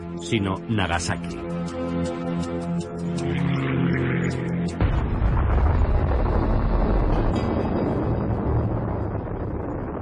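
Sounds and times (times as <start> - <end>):
speech: 0.2 - 4.9
tonal droning sound: 3.0 - 9.4
massive atomic bomb explosion with roaring rumble: 4.7 - 10.0.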